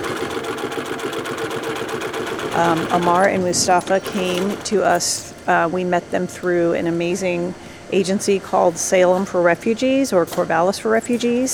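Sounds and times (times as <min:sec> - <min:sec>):
sewing machine stitching pieces of leather together: 0:00.0 - 0:06.0
speech: 0:02.6 - 0:11.5.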